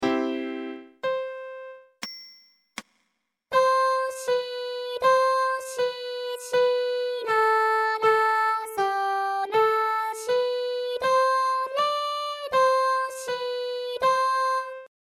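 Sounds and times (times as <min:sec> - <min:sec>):
piano on the left channel: 0:00.0 - 0:02.0, 0:03.5 - 0:14.9
vocals on the right channel: 0:03.5 - 0:14.9.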